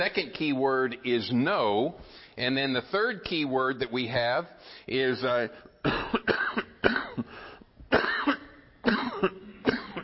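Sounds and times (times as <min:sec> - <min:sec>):
speech: 0:00.0 - 0:06.4
man coughing harshly: 0:05.8 - 0:10.0.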